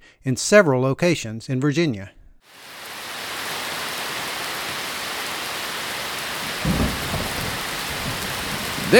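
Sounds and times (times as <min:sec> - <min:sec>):
speech: 0:00.2 - 0:02.2
thunderstorm rainfall in Blacksburg Virginia: 0:02.4 - 0:08.9
low thunder rumble: 0:05.6 - 0:08.9.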